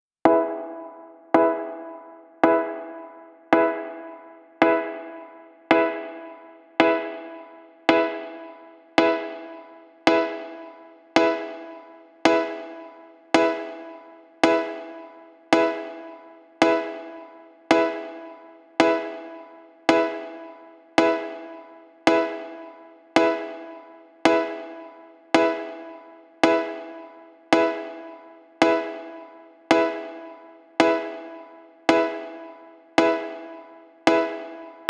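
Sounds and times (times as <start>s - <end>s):
piano in E minor with reverb: 0.3s - 34.8s.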